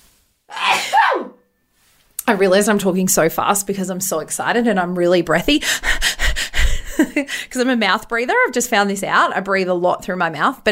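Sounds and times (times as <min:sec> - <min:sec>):
sneeze: 0:00.5 - 0:01.4
speech: 0:02.3 - 0:06.2, 0:07.2 - 0:10.6.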